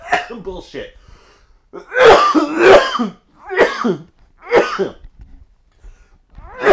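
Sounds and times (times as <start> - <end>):
harsh raspy coughs: 0.0 - 0.5, 1.7 - 5.0, 6.5 - 6.7
speech: 0.1 - 1.0, 1.7 - 3.2, 3.8 - 5.0.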